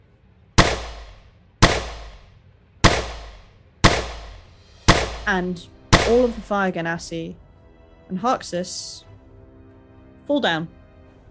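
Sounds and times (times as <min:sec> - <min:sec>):
gunshots from a gun firing: 0:00.6 - 0:06.4
speech: 0:05.3 - 0:07.4, 0:08.1 - 0:09.1, 0:10.3 - 0:10.8.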